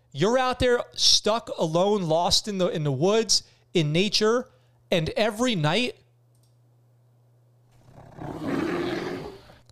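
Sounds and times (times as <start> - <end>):
speech: 0.2 - 6.0
grizzly bear roaring: 7.8 - 9.6.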